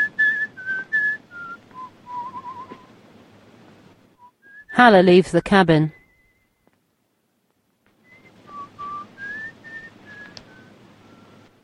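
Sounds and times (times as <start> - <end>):
lone man whistling a soft wandering tune: 0.0 - 2.9, 4.2 - 4.7, 6.0 - 6.7, 8.0 - 11.5
thin hiss: 0.0 - 11.6
speech: 4.8 - 6.0.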